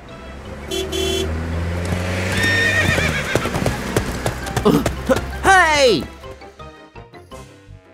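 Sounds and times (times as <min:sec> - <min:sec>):
car engine rumble: 0:00.0 - 0:05.4
horse hoofbeats clip-clopping alongside a car: 0:01.8 - 0:05.4
horse whinnying: 0:02.3 - 0:03.6
speech: 0:05.8 - 0:06.2.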